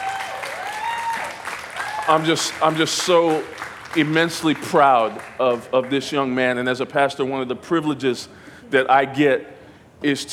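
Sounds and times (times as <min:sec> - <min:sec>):
cheers: 0:00.0 - 0:04.1
audience clapping: 0:00.0 - 0:06.2
speech: 0:02.1 - 0:10.3.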